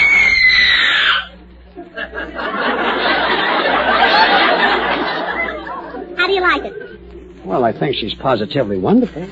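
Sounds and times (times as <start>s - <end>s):
woman screaming: 0.0s - 1.3s
audience laughter: 1.7s - 7.0s
speech: 7.7s - 9.2s.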